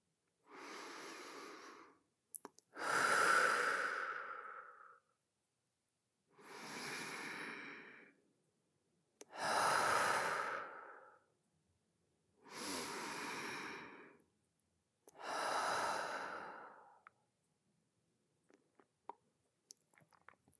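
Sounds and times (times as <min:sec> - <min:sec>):
slow deep breaths in and out: 0:00.4 - 0:02.1, 0:02.7 - 0:05.1, 0:06.3 - 0:08.2, 0:09.3 - 0:11.3, 0:12.4 - 0:14.3, 0:15.1 - 0:17.2.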